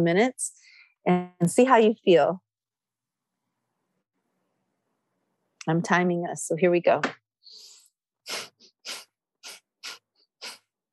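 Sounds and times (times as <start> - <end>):
speech: 0.0 - 2.4, 5.6 - 7.2
rapid panting breath through the nose during a breathing exercise: 7.4 - 10.7.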